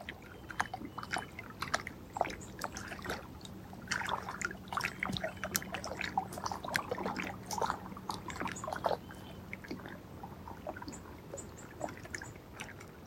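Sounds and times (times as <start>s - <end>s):
cormorants splashing across the water while taking off: 0.0s - 13.0s.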